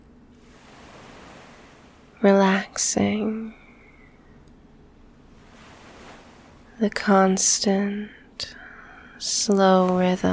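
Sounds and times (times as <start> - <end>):
ocean waves washing in: 0.1 - 8.4
speech: 2.2 - 3.6, 6.8 - 8.6, 9.2 - 10.3.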